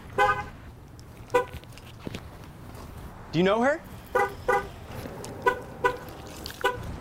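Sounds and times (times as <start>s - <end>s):
car horn chirps as a car is locked outside a store: 0.1s - 0.5s, 4.1s - 4.7s, 5.4s - 6.1s, 6.6s - 6.9s
faint footsteps: 1.0s - 3.2s, 4.1s - 6.9s
speech: 3.3s - 4.3s.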